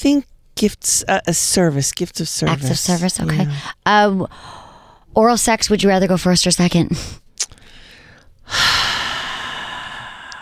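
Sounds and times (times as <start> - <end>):
speech: 0.0 - 4.6, 5.2 - 7.6
calm breathing during a guided breathing exercise: 3.4 - 5.1, 7.0 - 10.4.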